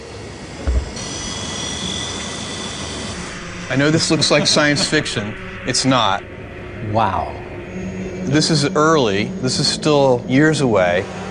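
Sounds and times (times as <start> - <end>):
delivery drone carrying a package whirring: 0.0 - 11.2
faint high tonal whine of a delivery drone: 0.0 - 11.2
low thump: 0.6 - 1.0
laughter: 3.7 - 6.2
speech: 3.7 - 7.4, 8.3 - 11.2.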